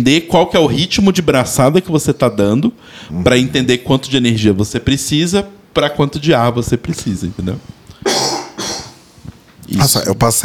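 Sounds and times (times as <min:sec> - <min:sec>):
speech: 0:00.0 - 0:08.3, 0:09.7 - 0:10.4
loud harsh coughs: 0:08.0 - 0:09.0.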